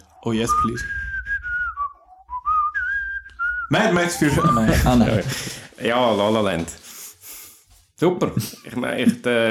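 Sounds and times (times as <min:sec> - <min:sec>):
speech: 0:00.2 - 0:01.0, 0:03.7 - 0:06.8, 0:08.0 - 0:09.4
person whistling a short melodic tune from a film: 0:00.4 - 0:05.2
laughter: 0:03.8 - 0:05.7.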